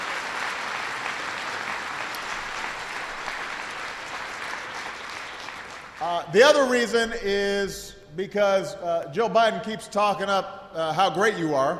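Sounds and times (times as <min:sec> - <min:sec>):
large audience applauding: 0:00.0 - 0:06.6
speech: 0:06.0 - 0:11.7.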